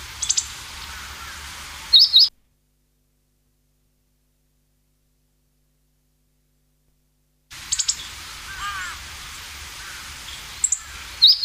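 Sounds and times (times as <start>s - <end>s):
hiss: 0.0s - 2.0s, 7.5s - 11.4s
meadow bunting thin high ticking calls: 0.0s - 2.3s, 7.5s - 11.4s.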